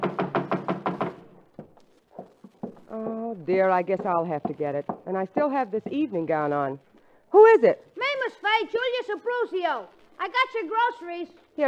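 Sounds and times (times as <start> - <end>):
knocking on a back door: 0.0 - 2.9, 3.8 - 6.1
speech: 3.5 - 11.6.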